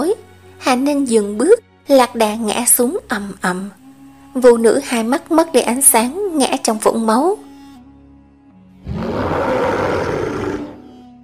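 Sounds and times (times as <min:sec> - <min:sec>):
speech: 0:00.7 - 0:03.8, 0:04.4 - 0:07.4
giant beast roaring under the desert night sky: 0:08.8 - 0:10.8.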